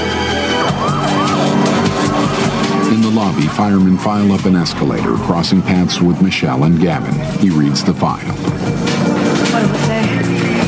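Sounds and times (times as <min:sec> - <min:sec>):
fire truck siren wailing as the truck pulls up: 0:00.0 - 0:06.6
speech: 0:02.9 - 0:09.0, 0:09.6 - 0:10.5.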